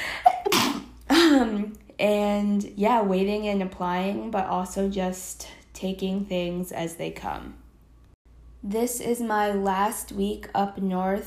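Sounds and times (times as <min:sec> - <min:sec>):
person sneezing: 0:00.3 - 0:01.4
speech: 0:01.5 - 0:07.6, 0:08.6 - 0:11.2.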